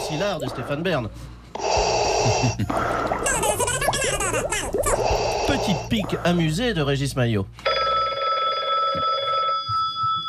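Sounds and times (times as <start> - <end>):
speech: 0.1 - 7.7
telephone bell ringing: 7.7 - 10.2.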